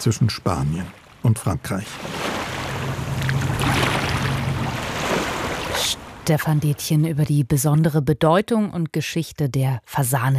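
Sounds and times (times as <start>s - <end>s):
speech: 0.0s - 2.4s, 6.3s - 10.3s
river water flowing calmly toward the sea: 0.0s - 7.0s
low engine-like hum: 2.4s - 6.3s.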